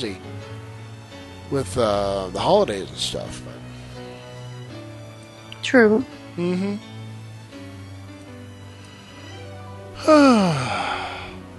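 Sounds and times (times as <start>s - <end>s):
speech: 0.0s - 0.3s, 1.5s - 3.6s, 5.6s - 6.9s, 10.0s - 10.8s
person yawning: 10.0s - 11.4s.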